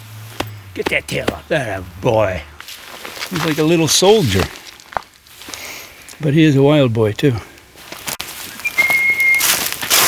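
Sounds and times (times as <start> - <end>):
noise: 0.0 - 10.0
speech: 0.8 - 2.5, 3.3 - 4.6, 6.2 - 7.5
person whistling to draw the attention of cats: 8.6 - 9.5.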